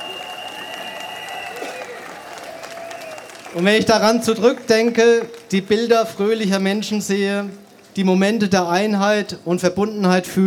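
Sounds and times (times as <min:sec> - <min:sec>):
faint whistles: 0:00.0 - 0:03.6
large audience applause: 0:00.0 - 0:08.0
speech: 0:03.5 - 0:10.4.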